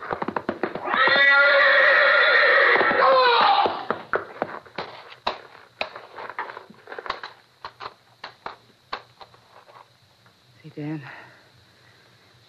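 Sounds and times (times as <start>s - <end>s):
hooves clopping and scuffling on a hard surface: 0.0s - 9.9s
horse whinnying: 0.8s - 3.9s.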